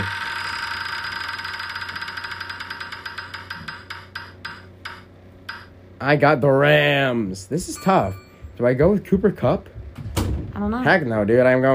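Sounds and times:
prize wheel spinning and ticking: 0.0s - 5.7s
low steady hum: 0.0s - 11.7s
speech: 6.0s - 9.7s, 10.6s - 11.7s.

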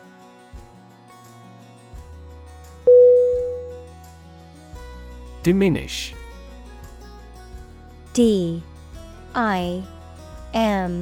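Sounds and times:
electronic telephone tone: 2.9s - 3.8s
speech: 5.4s - 6.2s, 8.2s - 8.7s, 9.3s - 10.9s.

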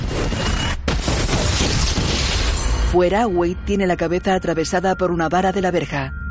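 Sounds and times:
windows exploding in a burning hallway: 0.0s - 2.9s
speech: 2.9s - 6.2s.

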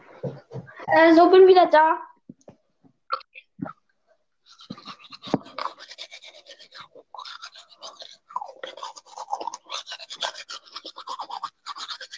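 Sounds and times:
speech: 0.9s - 2.1s
manual toothbrush scrubbing teeth: 4.4s - 12.1s.

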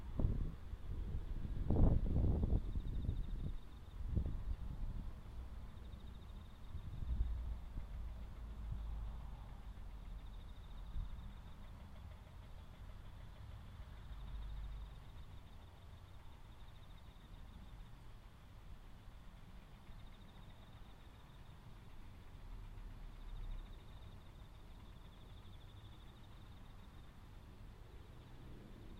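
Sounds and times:
soft wind rumble: 0.0s - 11.3s
crickets and other autumn insects trilling: 5.2s - 28.9s.

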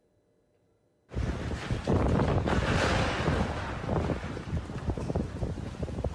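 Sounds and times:
crashing water or waves: 1.1s - 6.1s
strong lodos windstorm buffeting a microphone in Istanbul: 1.1s - 6.1s.

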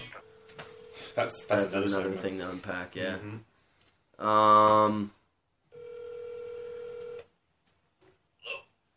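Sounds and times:
phone line ringing: 0.2s - 2.0s, 5.7s - 7.2s
speech: 1.2s - 3.5s, 4.2s - 5.2s.

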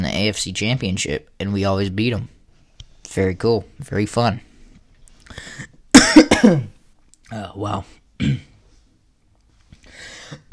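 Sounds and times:
speech: 0.2s - 2.4s, 3.1s - 4.5s, 6.4s - 8.5s
harsh coughs: 5.9s - 6.8s, 8.2s - 8.6s, 10.4s - 10.5s.

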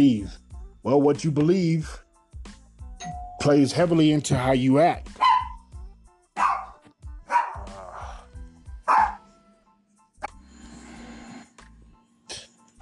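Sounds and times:
speech: 0.0s - 2.0s, 3.0s - 5.2s
dog barking: 5.2s - 5.7s, 6.4s - 7.9s, 8.8s - 9.3s.

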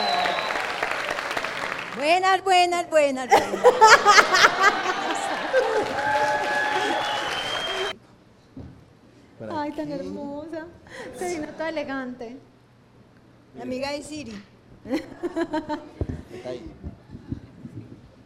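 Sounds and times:
audience applause: 0.0s - 2.0s, 3.6s - 8.0s
crowd cheering: 0.0s - 2.0s, 3.5s - 8.0s
speech: 2.0s - 6.1s, 9.6s - 12.5s, 13.5s - 16.8s
crowd laughing: 3.3s - 7.9s, 14.9s - 16.0s.

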